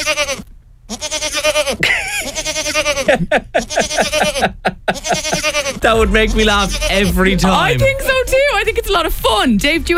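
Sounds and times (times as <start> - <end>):
goat bleating: 0.0 - 7.1
laughter: 1.8 - 8.6
speech: 5.8 - 9.9.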